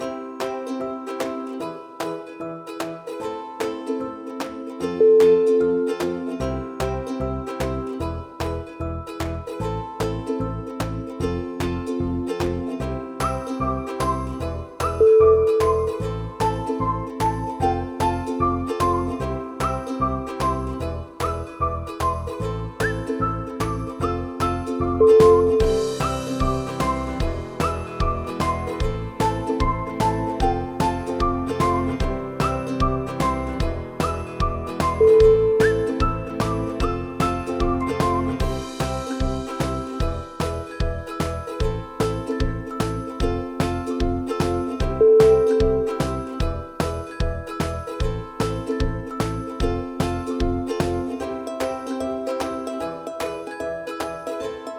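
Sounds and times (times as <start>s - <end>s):
upbeat ukulele: 0.0s - 54.7s
whistling: 14.1s - 23.9s, 33.2s - 36.8s.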